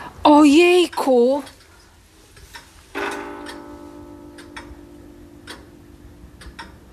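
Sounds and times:
speech: 0.3 - 1.6
ticking of a pendulum wall clock with large pendulum: 0.6 - 1.7, 2.4 - 6.9
resonant chime-like tone: 3.0 - 6.4.

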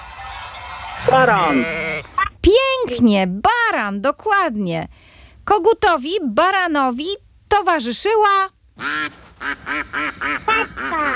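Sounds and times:
speech: 1.0 - 1.9, 2.5 - 11.1
duck quacking: 8.8 - 11.1.

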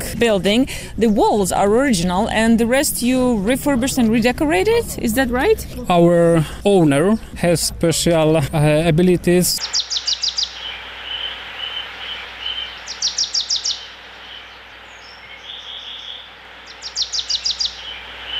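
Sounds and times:
speech: 0.1 - 9.8
birds singing rapid high trilling notes in a park: 9.6 - 18.3.

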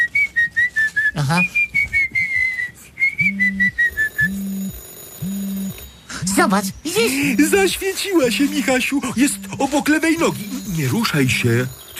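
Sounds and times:
person whistling a high wavering tone to trigger a phone finder: 0.0 - 4.4
speech: 1.2 - 1.6, 6.4 - 11.9
mobile phone repeated short rising beeps: 3.1 - 11.9.

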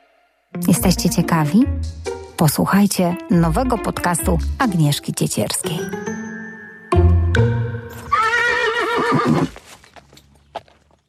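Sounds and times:
speech: 0.5 - 6.1
horse whinnying at a riding warm-up arena: 7.9 - 9.6
faint horse hoof clops at a riding warm-up arena: 9.0 - 11.0.

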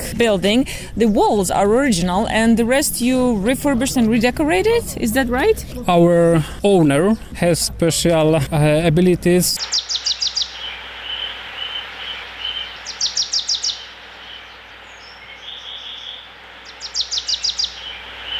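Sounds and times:
soft hiss of open-air ambience: 0.0 - 18.3
speech: 0.2 - 10.1
birds chirping outdoors in a park: 9.6 - 18.3.

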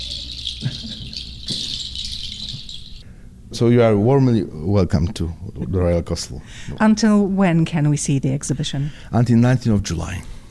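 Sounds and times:
dense chorus of high-pitched bird chirps and trills: 0.0 - 3.1
speech: 3.5 - 10.4.

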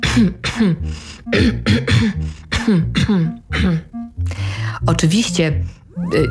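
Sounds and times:
person clearing throat: 0.0 - 3.9
speech: 0.2 - 6.2.

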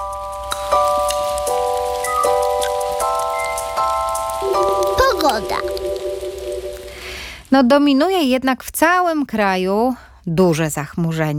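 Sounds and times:
rain hissing: 0.4 - 7.5
sustained layered musical tones: 4.4 - 7.4
speech: 5.2 - 5.9, 7.5 - 11.3.

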